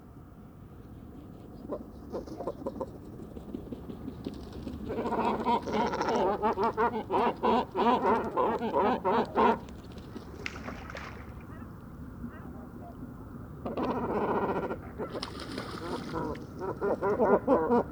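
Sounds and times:
great cormorants croaking and squabbling at a roost: 4.9s - 9.8s, 13.7s - 17.9s.

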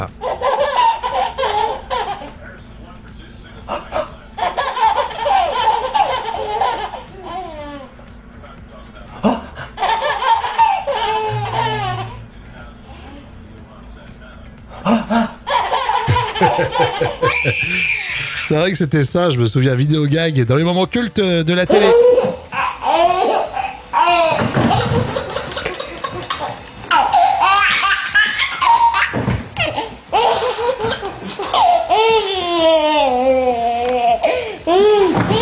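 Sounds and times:
speech: 0.0s - 0.2s, 17.0s - 22.2s
babies giggling and belly-laughing in home videos: 0.0s - 2.5s, 3.6s - 8.0s, 9.2s - 12.3s, 14.8s - 18.6s, 21.7s - 35.3s.

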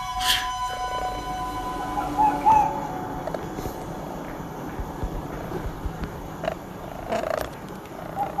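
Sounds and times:
low steady rumble: 0.0s - 8.3s
faint bird calls: 1.8s - 3.8s, 6.4s - 8.3s
birds pecking at a phone: 3.3s - 8.3s.

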